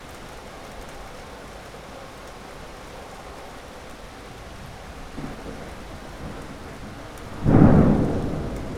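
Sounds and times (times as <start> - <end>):
rain: 0.0 - 8.7
thunder: 5.1 - 8.7.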